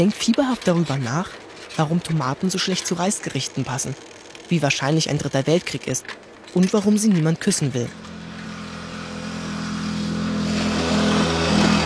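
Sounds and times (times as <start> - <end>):
speech: 0.0 - 8.2
moped engine driving past on a country road: 7.9 - 11.8.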